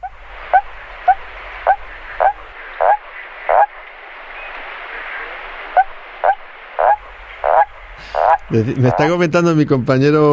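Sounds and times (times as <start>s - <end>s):
common toad calling: 0.0s - 3.8s, 5.2s - 9.2s
hiss: 0.0s - 10.3s
speech: 8.5s - 10.3s.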